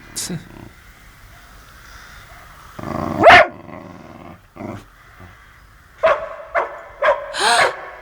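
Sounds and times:
dog barking: 2.3 - 2.6, 3.2 - 3.6, 6.0 - 7.9
dog growling: 2.8 - 4.9.

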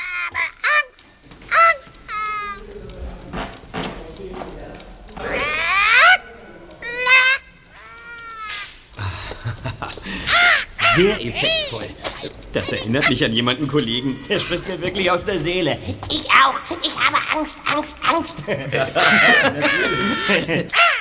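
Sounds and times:
bird croaking and squawking: 0.0 - 2.6, 5.2 - 9.0, 10.0 - 15.6, 19.0 - 20.9
faint chatter: 0.0 - 20.9
laughter: 0.0 - 20.9
speech: 11.0 - 20.8.

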